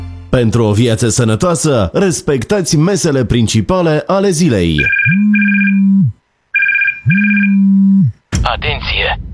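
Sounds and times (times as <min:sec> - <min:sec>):
speech: 0:00.3 - 0:06.2, 0:07.1 - 0:09.3
telephone ringing in electronic bursts: 0:04.8 - 0:05.9, 0:06.5 - 0:07.7.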